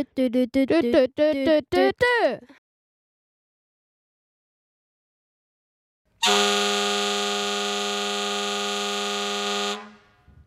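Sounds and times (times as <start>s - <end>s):
speech: 0.0s - 2.6s, 6.2s - 8.4s
long loud horn blast: 6.2s - 10.4s.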